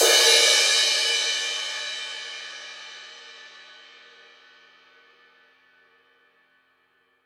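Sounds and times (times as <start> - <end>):
roomy crash cymbal hit: 0.0 - 2.9.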